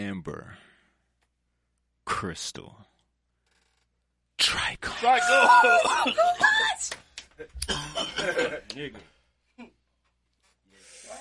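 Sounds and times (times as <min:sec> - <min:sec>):
speech: 0:00.0 - 0:00.7, 0:02.2 - 0:02.9, 0:04.4 - 0:09.7
person coughing: 0:05.6 - 0:06.7, 0:07.6 - 0:08.6
throat clearing: 0:07.6 - 0:08.5.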